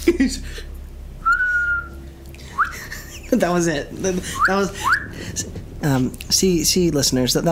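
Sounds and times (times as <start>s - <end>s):
speech: 0.2s - 0.7s, 3.3s - 7.5s
feeble airy whistle from someone failing to whistle: 1.2s - 2.8s, 4.2s - 5.5s.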